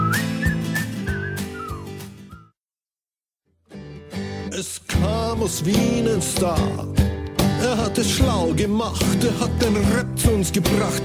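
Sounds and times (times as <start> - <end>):
people whistling along to a song: 0.0 - 2.5
speech: 4.6 - 11.0.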